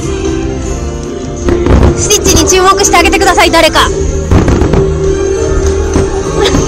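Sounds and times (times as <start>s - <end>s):
lively outdoor crowd: 0.0s - 6.6s
fireworks popping and crackling at a theme park: 1.4s - 2.6s, 4.2s - 6.6s
speech: 2.5s - 4.2s.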